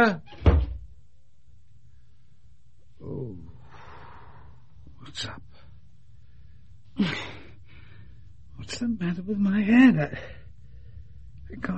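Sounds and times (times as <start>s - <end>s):
speech: 0.0s - 0.4s, 5.1s - 5.5s, 7.0s - 7.3s, 8.7s - 10.4s, 11.5s - 11.7s
street door being shut and latched: 0.3s - 0.9s.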